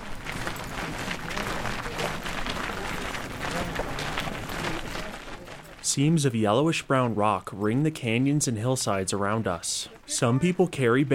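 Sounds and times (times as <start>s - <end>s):
group footsteps crunching on a dry dirt road: 0.0s - 5.9s
speech: 5.9s - 11.1s.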